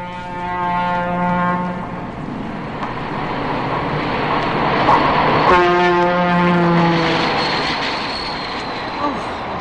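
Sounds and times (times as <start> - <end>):
Pennsylvania Railroad train horn blasts: 0.0 - 2.0, 5.5 - 7.4
passing Pennsylvania Railroad train wheels and engine rumbling in Philadelphia: 0.0 - 9.5.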